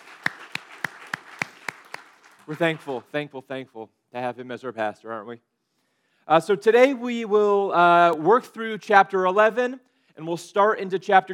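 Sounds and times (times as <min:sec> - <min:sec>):
gathered crowd applauding: 0:00.0 - 0:03.1
speech: 0:02.5 - 0:05.5, 0:06.3 - 0:11.3.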